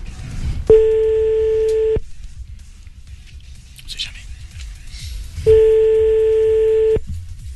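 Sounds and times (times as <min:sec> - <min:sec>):
telephone ringing tone on an outgoing call: 0:00.7 - 0:02.0, 0:05.5 - 0:07.0.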